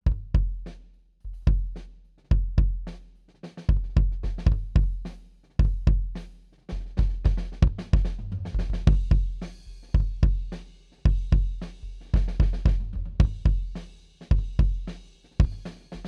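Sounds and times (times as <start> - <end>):
kick drum with head off: 0.1 - 0.7, 1.3 - 2.9, 3.7 - 6.2, 6.9 - 9.4, 11.1 - 11.6, 12.2 - 15.6.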